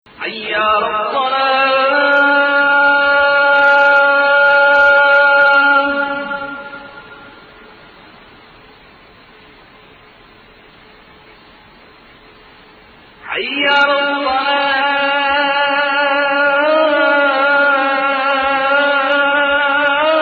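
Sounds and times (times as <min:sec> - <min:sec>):
call to prayer in the Hijaz maqam: 0:00.1 - 0:08.4, 0:13.2 - 0:20.2.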